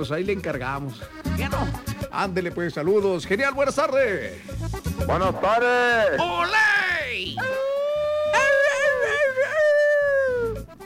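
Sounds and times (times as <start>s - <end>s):
speech: 0.0s - 6.8s
person imitating a coyote howl: 7.4s - 10.6s.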